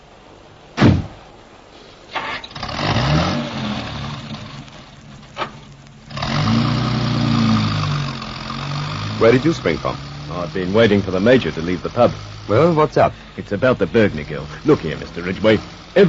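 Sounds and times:
car door slamming: 0:00.8 - 0:01.2
car engine starting and running: 0:02.1 - 0:16.0
speech: 0:09.2 - 0:16.0.

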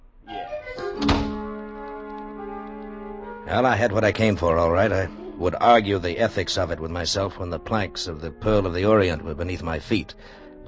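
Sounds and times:
door creaking: 0:00.2 - 0:02.2
door swinging shut with a solid thud: 0:00.8 - 0:01.6
speech: 0:03.5 - 0:10.6.

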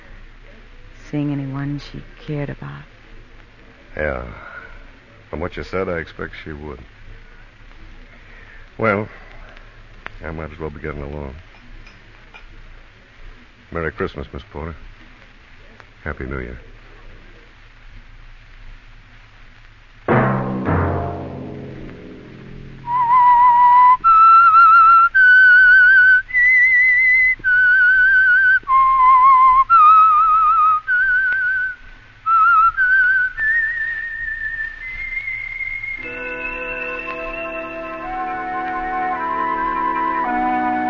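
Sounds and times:
speech: 0:01.1 - 0:02.9, 0:04.0 - 0:04.5, 0:05.3 - 0:07.0, 0:08.8 - 0:09.3, 0:10.2 - 0:11.5, 0:13.7 - 0:14.9, 0:16.0 - 0:16.7
brief musical sting: 0:20.1 - 0:23.9, 0:36.0 - 0:40.8
clear whistled slow eerie theme melody: 0:22.8 - 0:31.7, 0:32.3 - 0:40.8
sustained orchestral chords: 0:36.0 - 0:40.8.

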